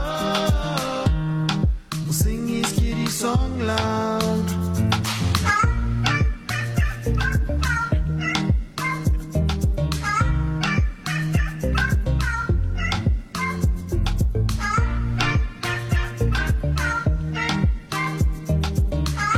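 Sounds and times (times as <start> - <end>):
bright percussive musical backing: 0.0 - 19.3
cat meowing loudly: 6.5 - 9.0, 12.8 - 13.5.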